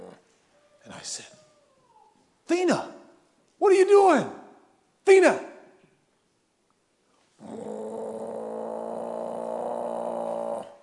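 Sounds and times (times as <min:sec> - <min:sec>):
speech: 0:01.0 - 0:01.4, 0:02.5 - 0:03.0, 0:03.6 - 0:04.4, 0:05.0 - 0:05.5
female dog growling: 0:07.4 - 0:10.8.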